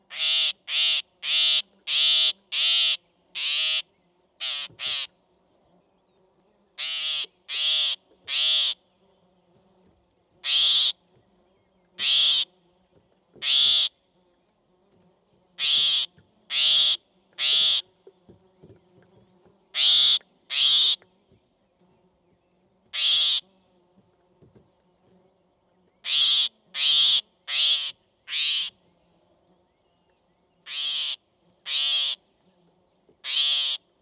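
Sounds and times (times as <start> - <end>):
great grey shrike Lanius excubitor calling: 0.1 - 5.1, 6.8 - 8.8, 10.4 - 11.0, 12.0 - 12.5, 13.4 - 13.9, 15.6 - 17.8, 19.8 - 21.0, 23.0 - 23.4, 26.0 - 28.8, 30.6 - 32.2, 33.2 - 33.8.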